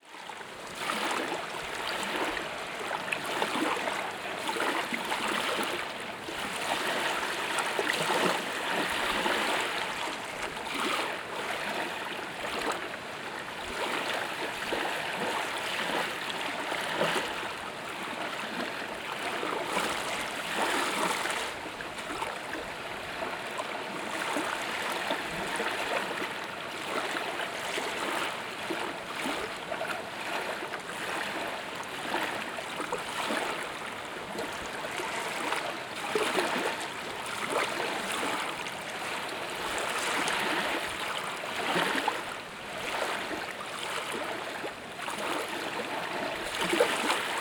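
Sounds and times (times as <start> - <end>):
water lapping at a boat ramp in Savannah: 0.2 - 47.4.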